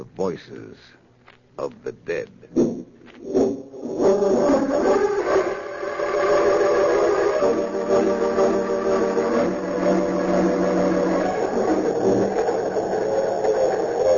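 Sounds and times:
speech: 0:00.0 - 0:01.0, 0:01.6 - 0:05.1, 0:07.4 - 0:10.6
express train roaring past through the night: 0:04.2 - 0:14.1.

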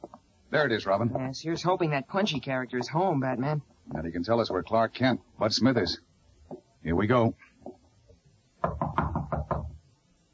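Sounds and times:
speech: 0:00.5 - 0:06.1, 0:06.8 - 0:07.5
firm knocking on a door: 0:08.6 - 0:09.8.

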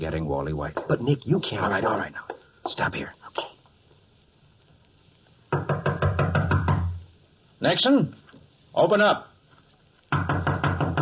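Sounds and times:
speech: 0:00.0 - 0:03.4, 0:07.6 - 0:08.2, 0:08.8 - 0:09.3
rapid loud solid knocking on a door: 0:05.5 - 0:07.0, 0:10.1 - 0:11.0.

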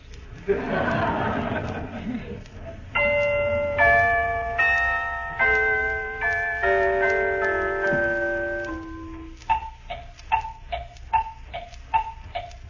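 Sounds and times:
laughter: 0:00.3 - 0:03.0
woodblock clock ticking: 0:02.9 - 0:12.6
shimmering bell-like tones: 0:03.0 - 0:09.8.

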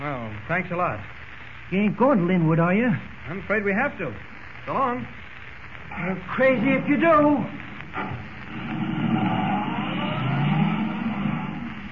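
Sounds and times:
speech: 0:00.5 - 0:05.2, 0:05.9 - 0:08.9
car engine roaring at top speed while accelerating hard: 0:08.0 - 0:11.9.

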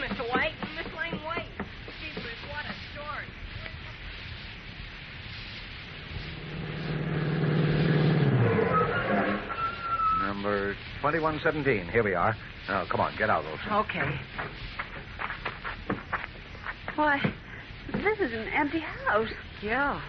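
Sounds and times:
steady rumble: 0:00.0 - 0:20.0
car engine starting up and revving: 0:06.1 - 0:09.6
speech: 0:11.1 - 0:14.6, 0:17.0 - 0:17.4, 0:18.6 - 0:20.0.

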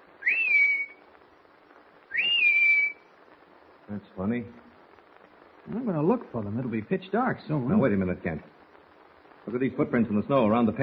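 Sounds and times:
faint hiss: 0:00.0 - 0:10.8
person whistling a call signal: 0:00.2 - 0:01.0, 0:02.1 - 0:03.0
speech: 0:03.9 - 0:04.6, 0:05.7 - 0:08.5, 0:09.5 - 0:10.8.

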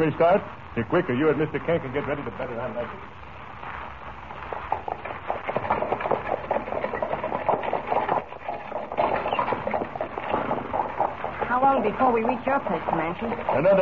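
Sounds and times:
speech: 0:00.0 - 0:03.2, 0:11.6 - 0:13.7
horse-drawn buckboard wagon rattling and rumbling: 0:04.4 - 0:13.7.

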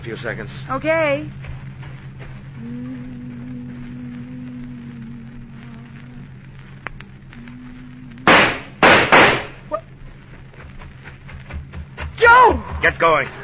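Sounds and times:
speech: 0:00.0 - 0:01.5, 0:12.8 - 0:13.4
car motor running with a low steady hum: 0:00.0 - 0:13.4
faint clicks: 0:01.4 - 0:08.8
gunshots: 0:08.3 - 0:09.7.

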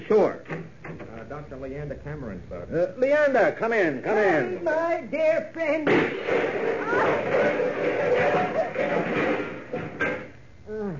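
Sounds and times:
speech: 0:00.1 - 0:09.3
clatter and thumping of equipment crashing: 0:05.9 - 0:10.3
person groaning: 0:10.7 - 0:10.9.

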